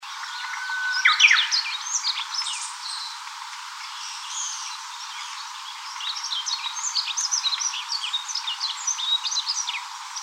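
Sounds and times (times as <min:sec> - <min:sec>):
small birds twittering: 0:00.2 - 0:10.2.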